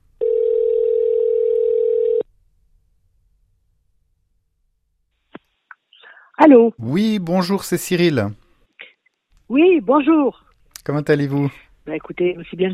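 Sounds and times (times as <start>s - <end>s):
telephone dial tone while placing a call: 0.2s - 2.2s
speech: 6.4s - 8.4s, 9.5s - 12.7s.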